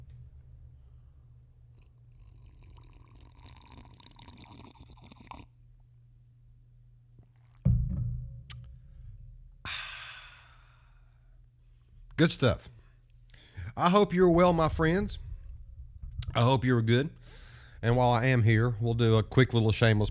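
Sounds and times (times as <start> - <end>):
black coffee pouring: 1.7 - 5.5
slurping sip of black coffee: 1.7 - 5.6
satisfied exhale: 9.6 - 11.3, 17.2 - 17.8
speech: 12.2 - 12.8, 13.8 - 15.3, 16.4 - 20.0.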